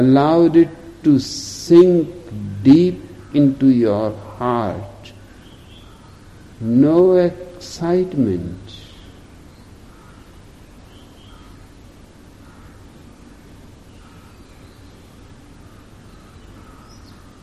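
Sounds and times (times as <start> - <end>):
speech: 0.0 - 4.9, 6.6 - 8.7
steady hiss of wind: 0.0 - 17.4
outdoor birds calling with harsh caw-like notes: 2.7 - 7.2, 8.7 - 17.4.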